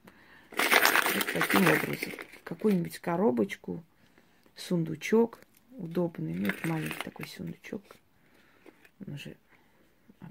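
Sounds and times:
coins jingling in a money-attracting ritual: 0:00.5 - 0:02.8, 0:06.3 - 0:07.1
speech: 0:01.4 - 0:03.9, 0:04.6 - 0:08.0, 0:09.0 - 0:09.4.

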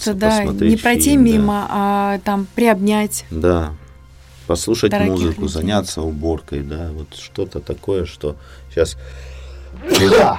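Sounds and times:
speech: 0:00.0 - 0:03.8, 0:04.5 - 0:10.3
sneeze: 0:09.8 - 0:10.3.

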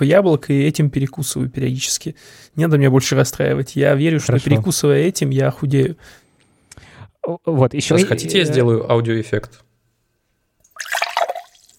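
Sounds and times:
speech: 0:00.0 - 0:06.2, 0:06.8 - 0:09.6
fizzy mineral water poured into a glass: 0:10.6 - 0:11.7.

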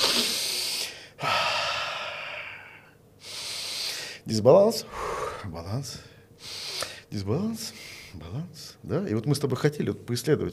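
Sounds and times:
deep slow breathing in and out: 0:00.0 - 0:07.1
speech: 0:04.3 - 0:10.5.

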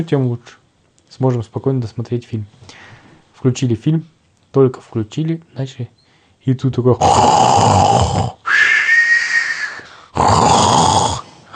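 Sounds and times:
speech: 0:00.0 - 0:08.4
voice imitating a man asleep in a train carriage snoring loudly: 0:07.0 - 0:09.5, 0:10.1 - 0:11.5.

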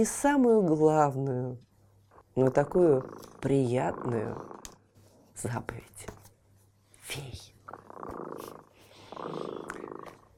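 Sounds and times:
speech: 0:00.0 - 0:01.7, 0:02.4 - 0:04.6, 0:05.4 - 0:06.2, 0:07.1 - 0:08.6, 0:09.2 - 0:10.1
cat purring: 0:02.4 - 0:04.8, 0:07.6 - 0:10.3.

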